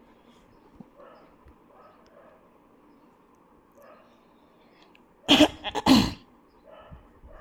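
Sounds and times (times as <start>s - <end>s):
dog barking outside: 1.0s - 2.5s, 3.8s - 4.2s, 6.6s - 7.4s.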